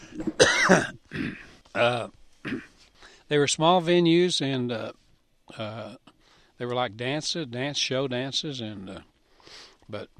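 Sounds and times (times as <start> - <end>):
person coughing: 0.0 - 2.8
speech: 0.1 - 1.0, 1.8 - 2.2, 3.3 - 5.0, 5.6 - 6.0, 6.6 - 10.1.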